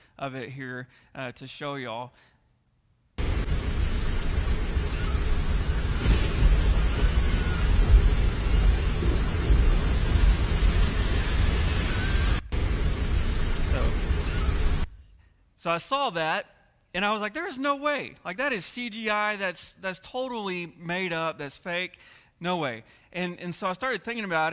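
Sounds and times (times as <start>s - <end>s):
speech: 0.2s - 2.3s, 15.6s - 24.5s
heavy downpour in a storm over the ocean: 3.2s - 14.9s.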